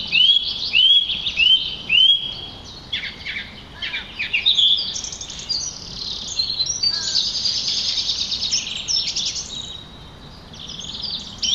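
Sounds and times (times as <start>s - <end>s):
song thrush Turdus philomelos singing: 0.0s - 11.5s
faint hiss: 2.4s - 11.5s.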